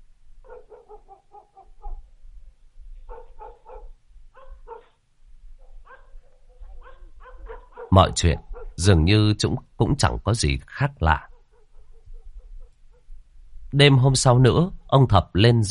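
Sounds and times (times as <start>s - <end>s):
dog barking at night: 0.4s - 2.1s, 3.1s - 5.0s, 5.6s - 8.8s, 11.2s - 13.1s
speech: 7.9s - 11.3s, 13.8s - 15.6s.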